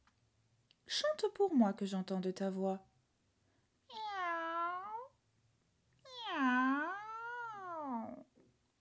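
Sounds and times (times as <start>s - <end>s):
speech: 0.9s - 2.9s
cat meowing: 3.9s - 5.1s, 6.1s - 8.2s.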